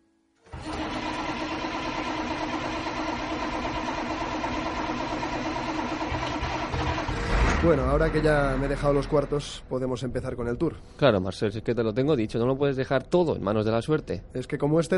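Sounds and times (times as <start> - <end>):
bus engine starting and idling: 0.5 - 9.8
speech: 7.6 - 14.9.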